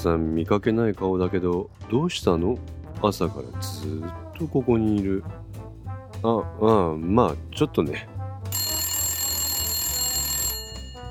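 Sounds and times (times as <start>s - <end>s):
speech: 0.0s - 5.4s, 6.2s - 8.2s
shop telephone ringing: 8.5s - 11.0s.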